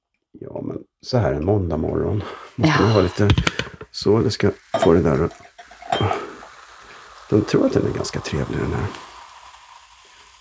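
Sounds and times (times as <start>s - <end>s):
speech: 1.0s - 6.2s, 7.3s - 9.1s
champagne glasses clinking: 4.7s - 6.4s.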